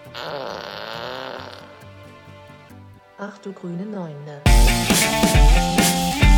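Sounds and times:
fart sound effect played by a smart speaker: 0:00.0 - 0:01.8
speech: 0:03.3 - 0:06.2.

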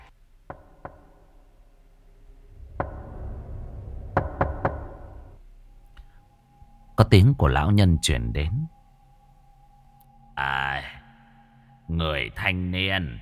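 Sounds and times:
quiet low hum: 0:00.0 - 0:13.2
knocking on a wooden door at night: 0:04.2 - 0:05.0
speech: 0:07.0 - 0:08.8, 0:11.9 - 0:13.2.

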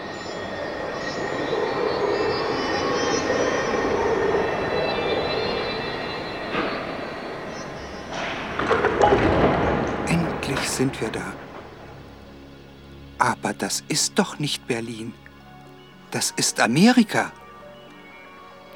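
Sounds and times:
train travelling without stopping, wheels and carriage noise: 0:00.0 - 0:15.0
speech: 0:10.8 - 0:11.6, 0:13.4 - 0:15.2, 0:16.1 - 0:17.4.

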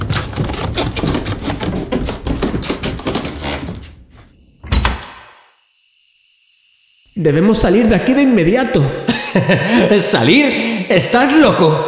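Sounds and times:
cellar door clattering: 0:00.0 - 0:05.3
speech: 0:07.2 - 0:11.8
laughter: 0:08.8 - 0:11.8.

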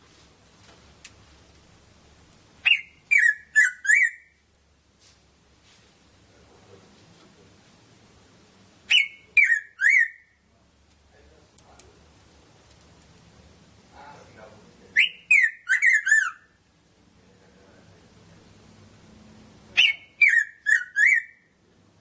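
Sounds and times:
Red-throated parrotfinch Erythrura Psittacea calls: 0:02.6 - 0:04.4, 0:08.9 - 0:10.4, 0:15.0 - 0:16.6, 0:19.8 - 0:21.5.

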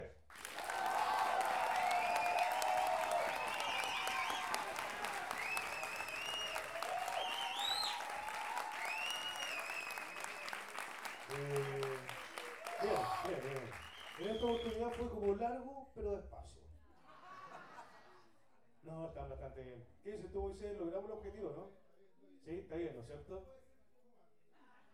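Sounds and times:
audience applause at a folk band and orchestra performance: 0:00.3 - 0:15.3
speech: 0:15.5 - 0:16.7, 0:19.2 - 0:21.8, 0:22.4 - 0:23.6.

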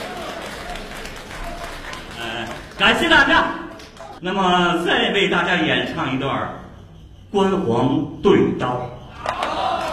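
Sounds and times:
audience applauding at a traditional opera and folk performance: 0:00.0 - 0:04.2
speech: 0:02.8 - 0:03.6, 0:04.2 - 0:06.6, 0:07.3 - 0:08.9.

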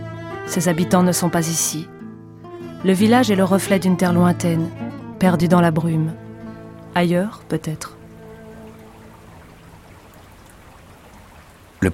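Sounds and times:
speech: 0:00.5 - 0:01.9, 0:02.8 - 0:06.2, 0:06.9 - 0:08.0
spring rain at a kibbutz: 0:07.9 - 0:11.9.

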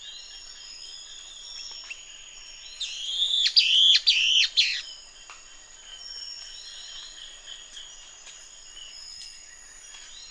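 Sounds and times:
steady high insect tones: 0:00.5 - 0:04.8
fuscous flycatcher Cnemotriccus fuscatus duidae song: 0:02.8 - 0:04.8.

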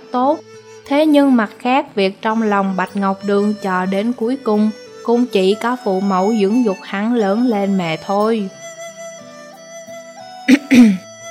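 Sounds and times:
speech: 0:00.1 - 0:08.6, 0:10.7 - 0:11.0
dry cough: 0:10.5 - 0:11.0.

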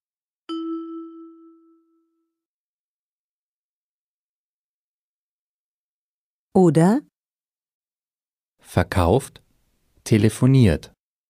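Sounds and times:
bell-like cue tone ding in a German language lesson: 0:00.5 - 0:02.3
speech: 0:06.6 - 0:07.1, 0:08.7 - 0:09.4, 0:10.1 - 0:10.9.

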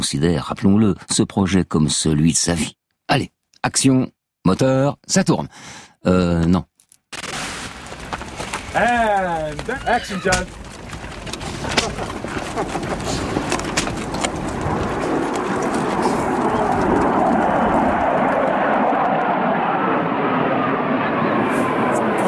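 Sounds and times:
speech: 0:00.0 - 0:07.2, 0:08.8 - 0:10.6, 0:11.6 - 0:13.4
military Mirage jets passing over a film set in a nature reserve: 0:08.1 - 0:22.2.

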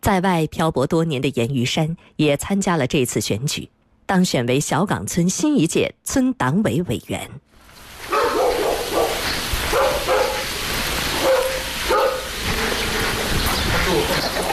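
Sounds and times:
speech: 0:00.0 - 0:07.5
dogs barking in a village courtyard: 0:08.0 - 0:14.5.

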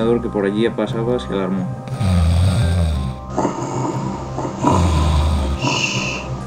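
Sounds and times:
speech: 0:00.0 - 0:02.2
loud snoring of a wolf sleeping after a big meal: 0:01.8 - 0:06.4.

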